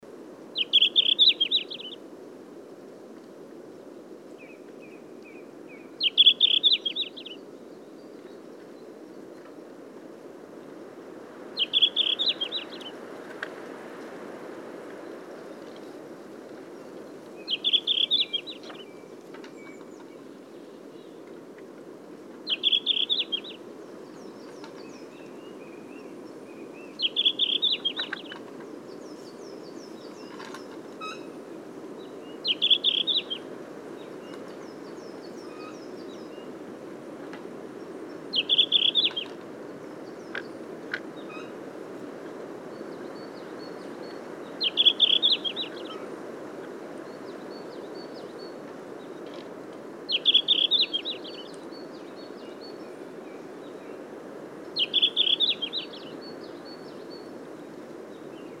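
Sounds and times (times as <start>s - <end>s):
Tarsiger cyanurus song: 0.6s - 2.0s, 4.4s - 9.6s, 11.6s - 13.0s, 16.8s - 21.4s, 22.3s - 36.6s, 37.8s - 41.6s, 42.7s - 46.2s, 47.0s - 49.4s, 50.1s - 58.5s.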